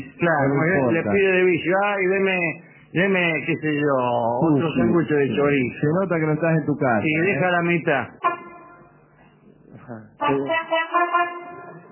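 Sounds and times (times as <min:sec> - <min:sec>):
speech: 0:00.0 - 0:08.3, 0:09.9 - 0:11.4
airplane horn blaring: 0:08.2 - 0:08.9, 0:10.2 - 0:11.9.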